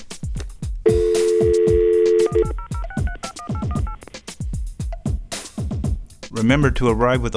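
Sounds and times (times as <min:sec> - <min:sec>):
repeating low thumping beat: 0:00.0 - 0:07.3
steady phone dial tone: 0:00.9 - 0:04.0
speech: 0:06.4 - 0:07.3.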